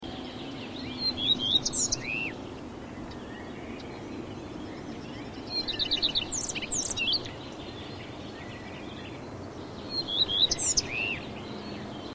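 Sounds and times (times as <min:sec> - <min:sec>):
common redstart: 0:00.0 - 0:12.1.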